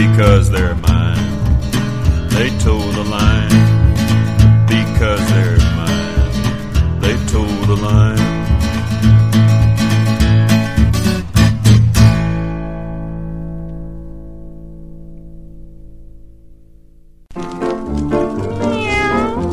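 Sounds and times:
speech: 0.0s - 0.9s
music: 0.0s - 19.5s
cats meowing: 18.5s - 19.5s.

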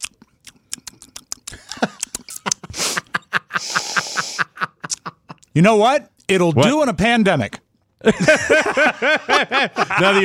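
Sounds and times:
mouth clicks and smacks: 0.0s - 2.7s
sipping and slurping Cabernet Sauvignon red wine: 0.8s - 3.1s
laughter: 1.6s - 5.4s, 8.0s - 10.2s
speech: 5.6s - 10.2s.

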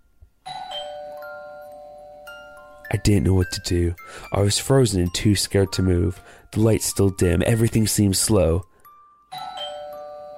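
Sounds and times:
doorbell ringing in a home: 0.4s - 6.2s, 9.0s - 10.3s
speech: 2.9s - 8.7s.

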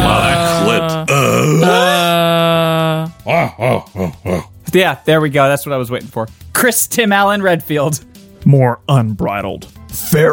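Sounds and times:
long steady vocal groan: 0.0s - 4.6s
short punchy grunts: 0.0s - 4.6s
speech: 4.7s - 10.3s.

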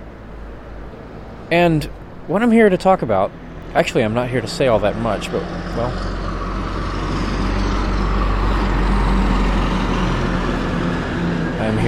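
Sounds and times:
cars, trucks and buses passing on a neighborhood street: 0.0s - 11.8s
speech: 1.5s - 6.3s, 11.6s - 11.8s.

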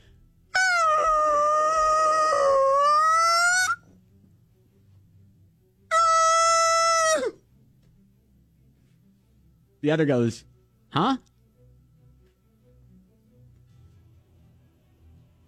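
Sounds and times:
human voice imitating a whale call: 0.6s - 3.8s, 5.9s - 7.4s
speech: 9.8s - 11.3s.

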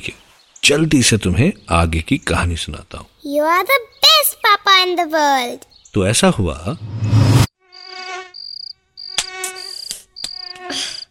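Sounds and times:
speech: 0.0s - 7.0s
mosquitoes buzzing at night: 7.6s - 11.0s.

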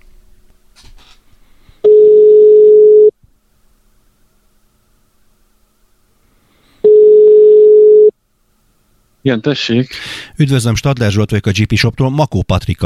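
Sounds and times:
ringback tone of an outgoing phone call: 1.8s - 3.1s, 6.8s - 8.1s
speech: 9.2s - 12.8s.

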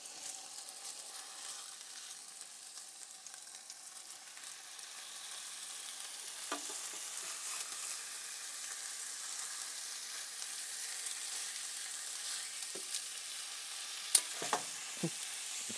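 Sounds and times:
food sizzling and frying in a pan: 0.0s - 15.7s.

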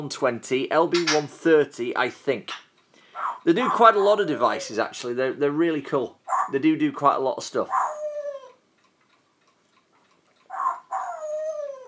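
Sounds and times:
speech: 0.0s - 2.6s, 3.4s - 7.8s
female pet parrot mimicking a dog's bark: 3.1s - 4.6s, 6.2s - 6.6s, 7.7s - 8.6s, 10.4s - 11.8s
female pet parrot tonal call: 6.3s - 6.6s, 7.7s - 8.6s, 10.5s - 11.8s.

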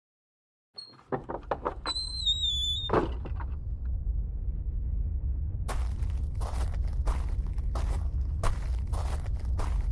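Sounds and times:
door clunking and creaking open onto a rooftop: 0.8s - 3.8s
steady low wind rumble outdoors: 2.1s - 9.9s
sharp regular footsteps crunching: 5.7s - 9.9s.

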